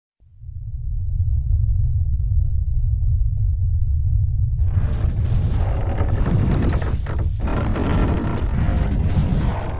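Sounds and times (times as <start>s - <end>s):
deep rumble of a holm oak root growing through soil underground: 0.2s - 9.7s
crackling and grinding of a holm oak root growing through soil underground: 4.6s - 9.7s.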